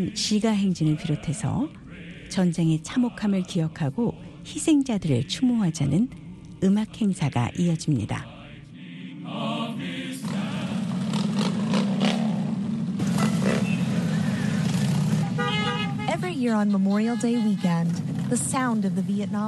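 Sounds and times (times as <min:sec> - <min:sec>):
speech: 0:00.0 - 0:08.3, 0:16.4 - 0:19.4
indistinct voices: 0:00.0 - 0:11.4, 0:16.1 - 0:19.4
many motorcycle engines rumbling in procession: 0:10.2 - 0:19.4
horns tooting: 0:13.0 - 0:18.1.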